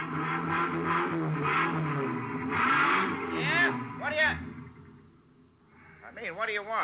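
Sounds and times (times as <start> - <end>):
truck engine idling and revving in a truck rental garage: 0.0 - 5.1
speech: 6.2 - 6.8.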